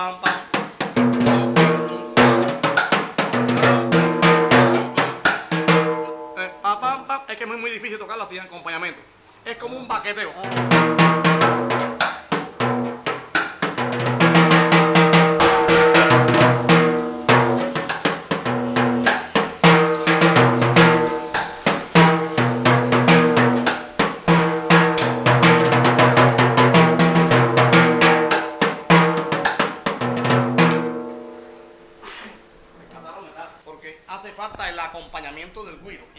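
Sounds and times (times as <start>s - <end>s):
guaracha music with timbales: 0.3s - 7.0s, 10.4s - 32.5s.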